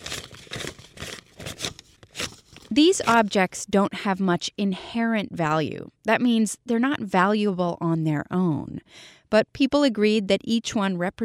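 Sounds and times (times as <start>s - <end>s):
paper dollar bills rustling and crinkling: 0.0s - 3.5s
speech: 2.7s - 11.2s.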